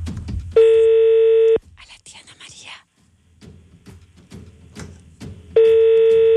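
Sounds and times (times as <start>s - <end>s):
soft rhythmic thumps: 0.0s - 0.9s, 2.9s - 6.3s
telephone ringback tone on an outgoing call: 0.6s - 1.6s, 5.6s - 6.3s.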